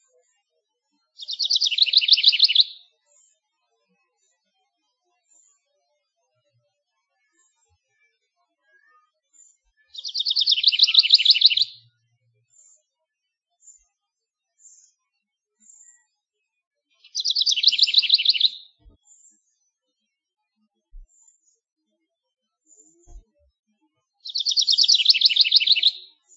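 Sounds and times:
house wren singing: 0:01.2 - 0:02.8, 0:09.9 - 0:11.8, 0:17.0 - 0:18.9, 0:24.2 - 0:26.1.

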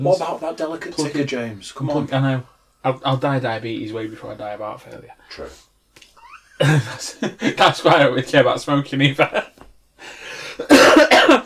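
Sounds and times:
speech: 0:00.0 - 0:05.7, 0:06.6 - 0:11.4
laughter: 0:06.2 - 0:08.0
person coughing hard: 0:06.6 - 0:07.0, 0:10.6 - 0:11.4
raspy inhale: 0:10.0 - 0:10.7.

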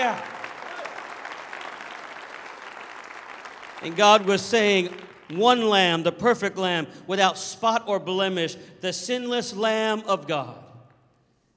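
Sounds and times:
speech: 0:00.0 - 0:00.3, 0:03.8 - 0:10.6
audience clapping hands in praise: 0:00.0 - 0:05.4.

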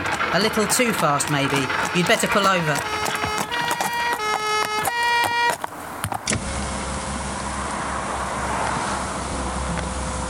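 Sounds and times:
horse hooves clopping: 0:00.0 - 0:06.5
horse-drawn cart rolling along a road: 0:00.0 - 0:10.2
speech: 0:00.3 - 0:03.2.

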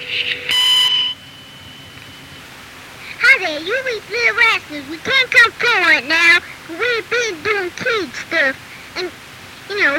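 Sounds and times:
answering machine message beep: 0:00.0 - 0:02.4
speech: 0:03.6 - 0:09.9.

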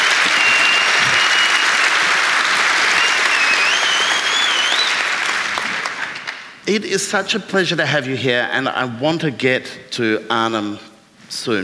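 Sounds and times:
large audience applauding: 0:00.0 - 0:06.5
faint whistles from audience: 0:00.3 - 0:02.0, 0:03.0 - 0:05.0
speech: 0:06.7 - 0:11.6.

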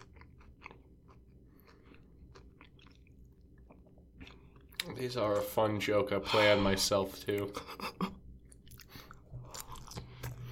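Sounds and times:
wet chewing of food with crunchy bites: 0:00.0 - 0:05.6, 0:08.4 - 0:10.5
speech: 0:04.9 - 0:08.0.

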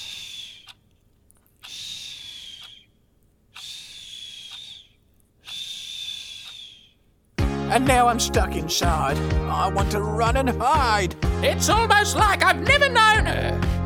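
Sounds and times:
woman's nasal breathing with a thin high whistle: 0:00.0 - 0:00.9, 0:01.6 - 0:07.0
speech: 0:07.7 - 0:13.7.

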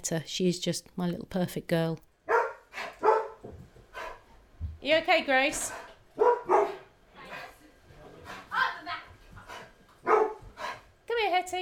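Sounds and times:
speech: 0:00.0 - 0:02.1, 0:04.8 - 0:06.8, 0:11.4 - 0:11.5
small dog barking: 0:02.3 - 0:03.4, 0:06.2 - 0:06.9, 0:10.0 - 0:10.4.

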